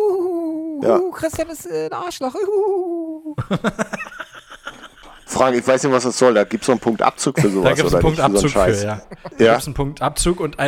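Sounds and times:
human voice imitating an eagle-owl hoot: 0:00.0 - 0:00.8, 0:02.4 - 0:03.4
speech: 0:00.8 - 0:04.1, 0:05.4 - 0:10.6
rhythmic laughter: 0:03.4 - 0:09.6.

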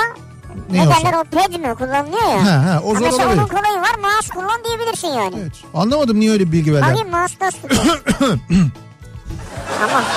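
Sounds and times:
speech: 0:00.6 - 0:08.9, 0:09.8 - 0:10.1
person coughing: 0:07.6 - 0:08.8
laughter: 0:09.5 - 0:10.1.

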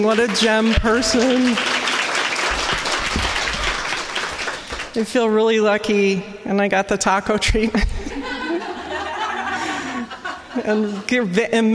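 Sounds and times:
speech: 0:00.0 - 0:01.8, 0:05.0 - 0:07.9, 0:10.6 - 0:11.7
crowd applauding: 0:00.0 - 0:05.0
laughter: 0:07.8 - 0:11.4.

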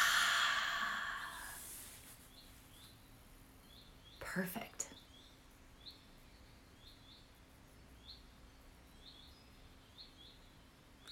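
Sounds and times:
long airy exhale of a held deep breath: 0:00.0 - 0:02.0
speech: 0:04.4 - 0:04.7.

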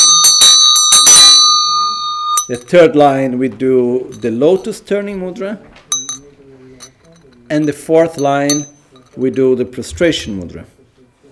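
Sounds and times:
small ritual hand bell ringing during prostration practice: 0:00.0 - 0:02.8, 0:05.9 - 0:06.2, 0:06.8 - 0:09.3
speech: 0:02.5 - 0:05.7, 0:07.5 - 0:10.7.

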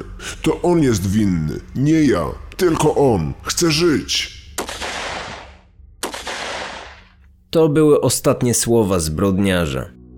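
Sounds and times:
speech: 0:00.2 - 0:04.4, 0:07.5 - 0:10.0
gunfire volleys from a firing squad: 0:04.6 - 0:07.2.

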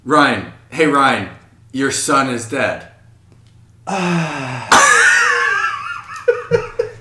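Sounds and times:
speech: 0:00.0 - 0:02.9, 0:03.9 - 0:04.8
person gasping: 0:03.9 - 0:05.2
person imitating a deep breath of relief: 0:03.9 - 0:05.2.

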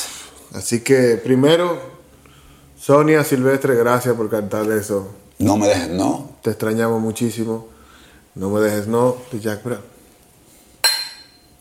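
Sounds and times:
speech: 0:00.5 - 0:02.0, 0:02.8 - 0:07.7, 0:08.4 - 0:10.0
glass striking glass in a toast: 0:10.8 - 0:11.5.

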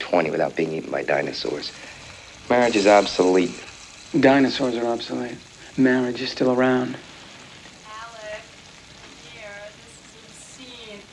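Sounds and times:
vegetables sizzling and crackling in a frying pan: 0:00.0 - 0:11.1
speech: 0:00.1 - 0:07.1
soft scraping as vegetables are stirred in a frying pan: 0:01.6 - 0:05.7.

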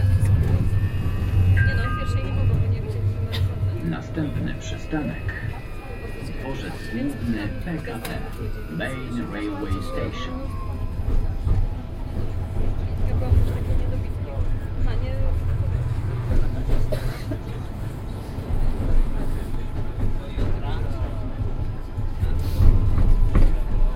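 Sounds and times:
gliding whining tram tones: 0:00.0 - 0:16.8
low rumble of moving tram wheels and motor: 0:00.0 - 0:23.9
passengers talking inside a moving tram: 0:00.0 - 0:23.9.

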